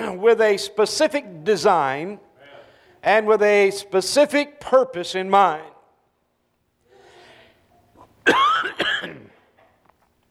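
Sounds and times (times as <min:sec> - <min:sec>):
speech: 0:00.1 - 0:02.3, 0:03.0 - 0:05.7, 0:08.2 - 0:08.9
person breathing: 0:02.4 - 0:03.0, 0:06.8 - 0:07.7
person coughing harshly and raspy from a month-long cough: 0:08.2 - 0:09.5.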